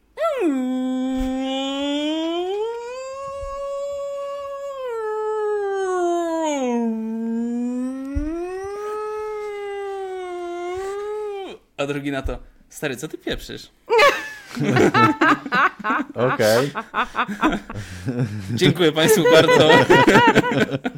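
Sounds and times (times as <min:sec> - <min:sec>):
person imitating a whale call with a wailing vocal moan: 0:00.2 - 0:11.7
speech: 0:11.8 - 0:20.9
laughter: 0:14.0 - 0:20.9.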